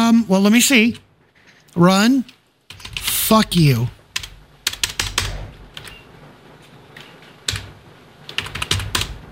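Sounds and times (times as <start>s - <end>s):
speech: 0.1s - 1.0s, 1.8s - 2.4s, 3.3s - 4.0s
clacky typing on a computer keyboard: 2.7s - 3.2s, 4.1s - 6.0s, 7.0s - 7.7s, 8.3s - 9.2s.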